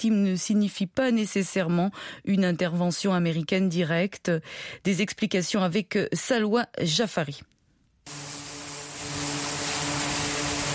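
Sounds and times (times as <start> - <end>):
speech: 0.0 - 8.3
aircraft engines operating on an aircraft carrier: 8.1 - 10.7.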